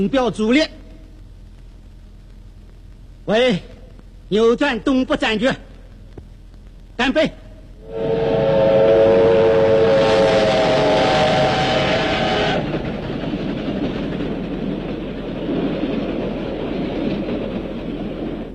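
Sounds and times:
speech: 0.0 - 0.8, 3.2 - 5.7, 7.0 - 8.1
military train speeding past at night: 7.4 - 18.5
military train whistle blaring at night: 7.8 - 12.8.

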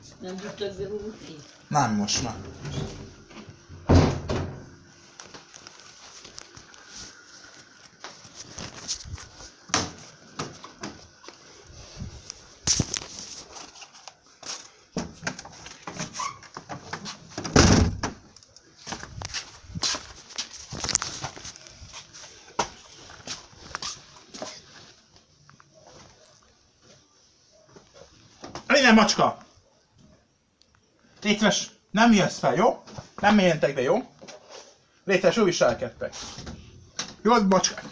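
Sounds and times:
speech: 0.2 - 3.2, 29.0 - 29.4, 31.3 - 34.1, 35.1 - 36.4, 37.2 - 37.9
door closing: 2.1 - 4.8, 15.0 - 18.2
door slamming: 2.2 - 4.8, 17.4 - 18.2.

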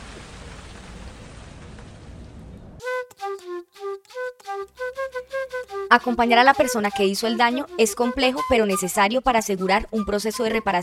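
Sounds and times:
heavy rain: 0.0 - 2.8
music: 2.8 - 10.8
speech: 5.9 - 10.8.

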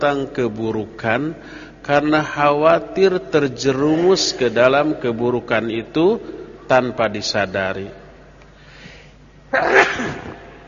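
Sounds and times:
speech: 0.0 - 8.0, 9.5 - 10.3
sneeze: 9.5 - 10.6.

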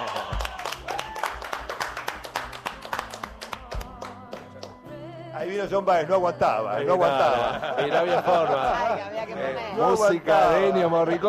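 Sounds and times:
audience applause from the stands: 0.0 - 3.8
speech: 5.4 - 11.2
laughter: 6.8 - 11.2.

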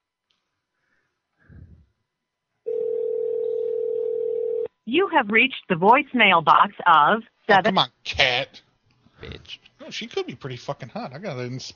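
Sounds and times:
telephone dial tone: 2.7 - 4.7
speech: 4.9 - 8.6, 9.5 - 11.7.

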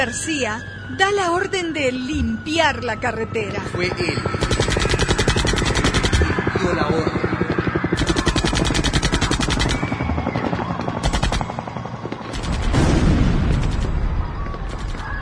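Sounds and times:
speech: 0.0 - 5.0
police gunfire at dawn on protesters blocking a highway: 4.1 - 6.8, 7.7 - 15.0.

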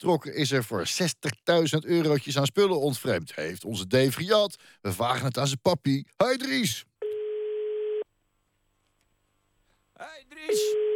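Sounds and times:
speech: 0.0 - 6.9, 10.0 - 10.9
telephone line ringing tone while calling someone: 7.0 - 8.0, 10.5 - 10.9.

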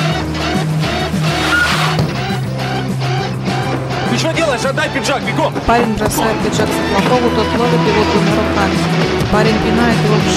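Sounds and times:
car braking sharply at a pedestrian crossing, tires skidding: 0.0 - 7.6
speech: 4.6 - 10.3.

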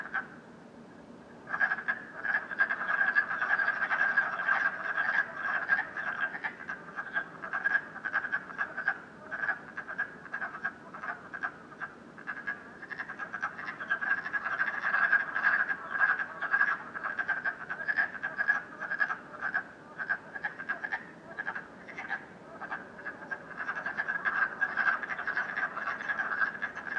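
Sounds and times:
frogs croaking in a dense chorus at night in Canada: 0.0 - 0.4, 1.4 - 26.9.

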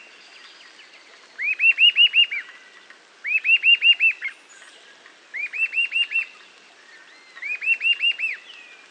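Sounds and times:
Eastern sirystes Sirystes sibilator sibilator whistling: 1.4 - 2.5, 3.2 - 4.3, 5.4 - 6.4, 7.1 - 8.8.

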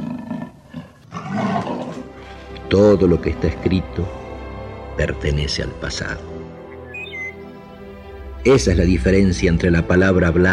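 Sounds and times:
lion or tiger roaring: 0.0 - 2.2
speech: 2.7 - 4.2, 5.0 - 6.3, 8.4 - 10.5.

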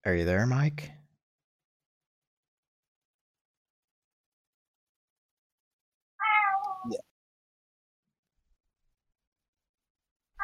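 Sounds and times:
speech: 0.0 - 1.0, 6.8 - 7.1
cat meowing: 6.2 - 7.0.

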